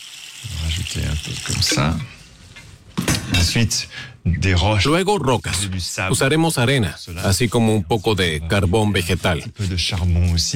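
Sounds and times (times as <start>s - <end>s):
water splashing and gurgling as it is poured into a container: 0.0s - 2.2s
speech: 0.9s - 2.2s, 3.4s - 10.5s.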